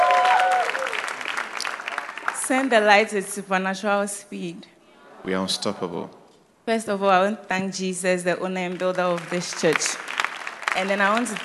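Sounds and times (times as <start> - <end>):
church congregation applauding during a testimony at a service: 0.0 - 3.0, 8.6 - 11.4
speech: 2.5 - 10.0, 10.8 - 11.4.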